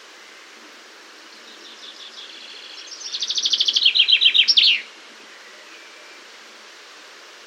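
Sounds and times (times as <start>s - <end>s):
Common chaffinch song, Fringilla coelebs: 1.5s - 4.9s.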